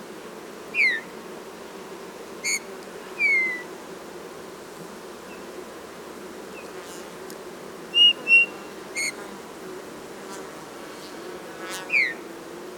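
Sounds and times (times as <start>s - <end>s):
Eurasian bullfinch Pyrrhula pyrrhula giving soft piping whistles: 0.8s - 1.0s, 2.4s - 2.6s, 8.0s - 9.2s, 11.9s - 12.2s.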